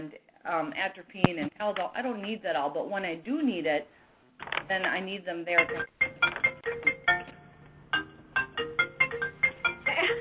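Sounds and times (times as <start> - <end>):
speech: 0.1 - 6.0
phone ringing with electronic melody of bright pulsing tones: 5.6 - 10.1.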